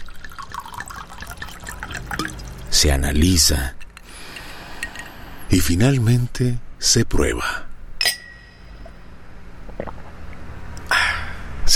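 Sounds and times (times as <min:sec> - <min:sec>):
rum being poured into a glass: 0:00.0 - 0:02.8
speech: 0:02.8 - 0:03.8, 0:05.5 - 0:07.7.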